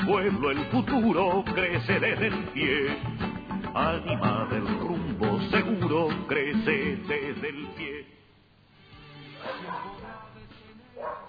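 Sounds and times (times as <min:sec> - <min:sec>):
speech: 0:00.1 - 0:08.2, 0:09.4 - 0:10.3
dog barking: 0:09.4 - 0:10.1, 0:11.0 - 0:11.2.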